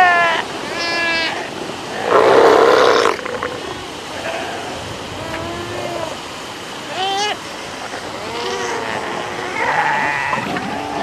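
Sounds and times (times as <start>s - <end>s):
South American sea lion harmonic bleat: 0.0s - 6.2s, 6.9s - 11.0s
South American sea lion broad hoarse roar: 1.9s - 6.2s, 8.0s - 11.0s.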